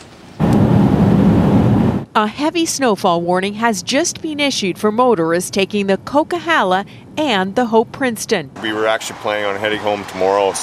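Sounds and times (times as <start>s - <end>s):
heavy rain storm pounding at a Christmas tree display: 0.0s - 2.0s, 8.6s - 10.6s
deep rumbling undertone: 0.4s - 9.8s
speech: 2.2s - 10.6s.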